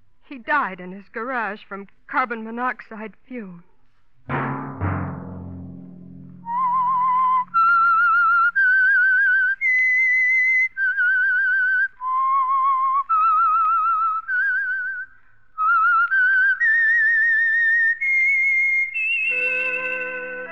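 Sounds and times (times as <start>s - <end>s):
speech: 0.3s - 3.7s
lone whistler whistling a slow wavering melody with vibrato: 6.4s - 20.5s.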